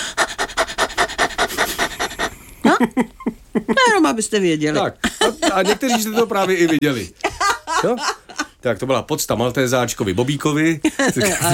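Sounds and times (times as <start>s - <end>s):
person imitating a dog's panting as a diaphragm warm-up exercise: 0.0s - 2.7s
speech: 2.8s - 7.2s, 7.8s - 11.5s
laughter: 4.8s - 8.6s, 10.8s - 11.5s.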